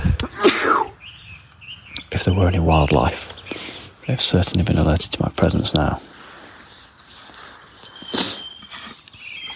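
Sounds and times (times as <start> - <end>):
person sneezing: 0.2 - 1.0
speech: 2.2 - 3.4, 4.1 - 6.1.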